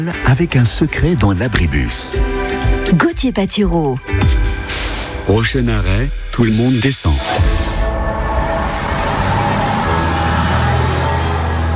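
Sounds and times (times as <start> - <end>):
speech: 0.0 - 7.8
deep low rumble from heavy vehicles passing or idling: 7.7 - 11.7
steady roar of engines at a busy road intersection: 7.8 - 11.7.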